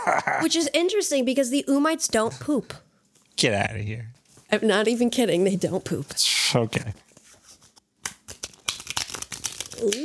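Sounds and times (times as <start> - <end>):
speech: 0.0 - 7.1, 9.8 - 10.0
deck of cards shuffled with a rapid riffle: 7.1 - 10.0.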